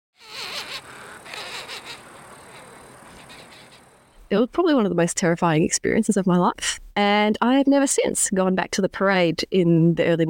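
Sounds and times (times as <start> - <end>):
Short-tailed Shearwaters calling with wavering, moaning and rasping cries: 0.2 - 4.0
speech: 4.3 - 10.2.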